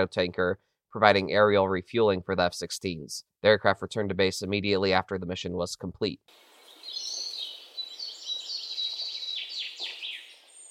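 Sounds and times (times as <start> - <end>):
speech: 0.0 - 6.5
birds chirping: 6.3 - 10.6.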